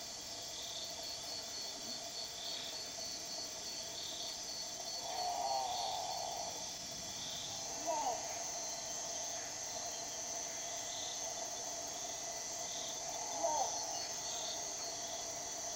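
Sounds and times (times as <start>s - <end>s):
steady high chorus of insects: 0.0s - 15.7s
great potoo giving moaning calls: 5.0s - 6.6s, 7.5s - 8.4s, 12.9s - 14.4s.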